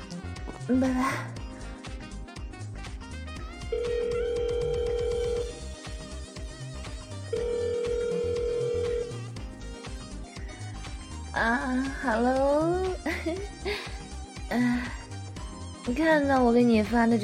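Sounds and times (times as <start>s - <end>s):
busy music: 0.0s - 17.2s
speech: 0.7s - 1.4s, 11.4s - 13.9s, 14.5s - 15.0s, 15.9s - 17.2s
outgoing phone call ringback tone: 3.7s - 5.6s, 7.3s - 9.3s.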